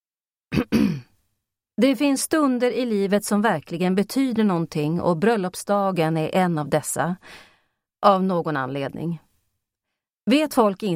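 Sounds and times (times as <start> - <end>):
person clearing throat into microphone: 0.5 - 1.1
speech: 1.8 - 9.2, 10.3 - 10.9.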